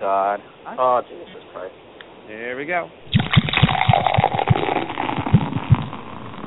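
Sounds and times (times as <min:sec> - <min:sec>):
speech: 0:00.0 - 0:05.3
fizzy soda pouring into a glass: 0:03.1 - 0:06.4
irregular low thumps and gurgles: 0:03.1 - 0:06.4.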